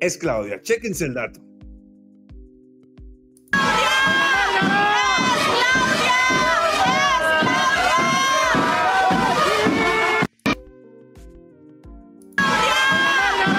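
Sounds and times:
speech: 0.0 - 1.5
large crowd shouting a chant in unison: 3.6 - 10.3, 12.4 - 13.5.

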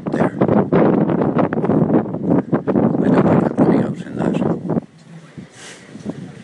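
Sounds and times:
strong wind buffeting microphone: 0.0 - 6.4.

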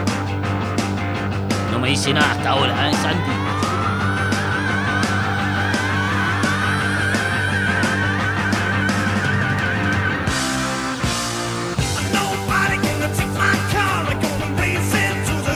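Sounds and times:
dense distorted guitars: 0.0 - 15.5
loud driving rock and roll music: 0.0 - 15.5
steady drums: 0.0 - 15.5
laughter: 1.5 - 10.2
strained shouting vocal line: 1.7 - 3.8
speech: 1.8 - 3.5.

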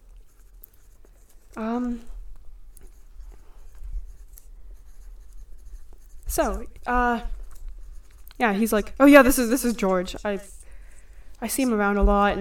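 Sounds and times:
pen scratching on paper while writing: 0.2 - 1.5, 2.7 - 10.6
speech: 1.6 - 2.2, 6.4 - 7.4, 8.4 - 10.6, 11.4 - 12.3.

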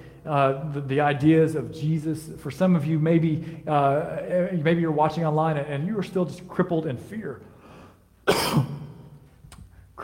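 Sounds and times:
speech: 0.2 - 7.5, 8.3 - 8.7
cough: 8.2 - 8.9.

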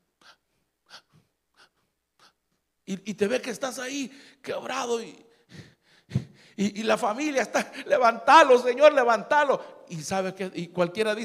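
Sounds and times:
person imitating gasping breaths of a fish out of water: 0.2 - 2.4, 5.4 - 6.6
speech: 2.9 - 5.6, 6.6 - 11.2.

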